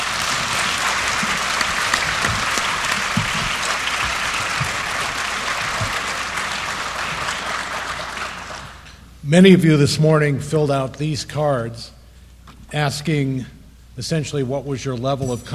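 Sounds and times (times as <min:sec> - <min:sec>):
room full of people clapping: 0:00.0 - 0:08.9
speech: 0:09.3 - 0:12.0, 0:12.7 - 0:15.5.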